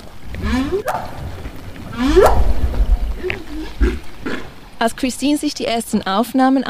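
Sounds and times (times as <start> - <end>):
low underwater rumble: 0.0 - 4.9
humpback whale whup calls: 0.3 - 4.5
speech: 0.7 - 1.2, 4.8 - 6.6.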